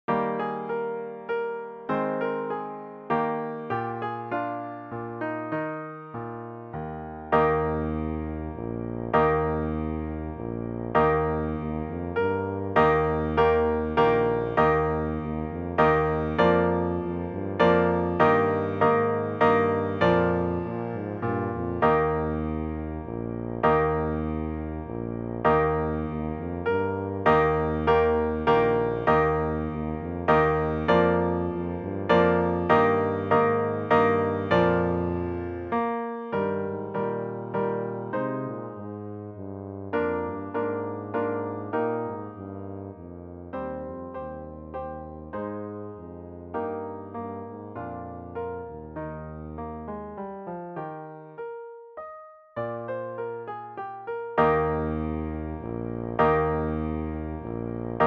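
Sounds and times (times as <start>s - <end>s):
piano: 0.0s - 58.0s
tuba: 7.2s - 49.9s, 54.4s - 58.0s.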